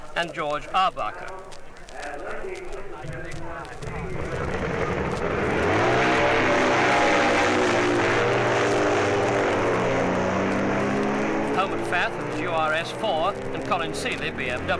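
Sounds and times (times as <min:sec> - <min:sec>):
racing motorcycle engines roaring at the start of a race: 0:00.0 - 0:14.7
speech: 0:00.2 - 0:04.6, 0:11.9 - 0:14.7.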